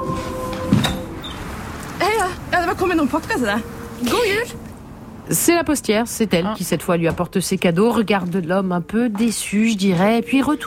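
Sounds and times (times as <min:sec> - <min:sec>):
sharp knock-like clunk of a door: 0:00.1 - 0:01.4
speech: 0:02.9 - 0:04.7, 0:05.3 - 0:10.6.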